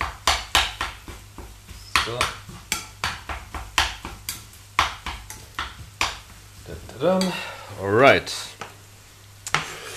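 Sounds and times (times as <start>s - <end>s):
minced meat sizzling as it is browned in a pan: 0.0s - 9.9s
utensil scraping and stirring minced meat: 0.4s - 8.4s, 9.5s - 9.9s
speech: 2.1s - 2.4s, 6.7s - 8.6s.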